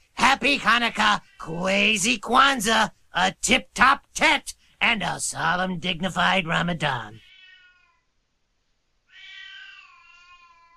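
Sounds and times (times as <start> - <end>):
speech: 0.4 - 7.3
cat meowing and yowling: 7.2 - 8.0, 9.1 - 10.7.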